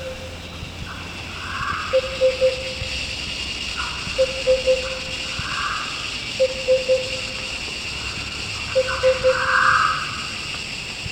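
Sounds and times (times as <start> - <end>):
constant background hiss: 0.0 - 11.1
Sunda lesser cuckoo giving three-note whistled phrases: 2.0 - 2.8, 4.2 - 5.0, 6.4 - 7.4, 8.8 - 9.6.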